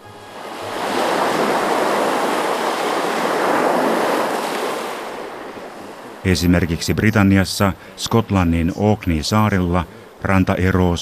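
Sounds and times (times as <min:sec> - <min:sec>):
ocean waves breaking on the shore: 0:00.0 - 0:11.0
speech: 0:06.2 - 0:11.0.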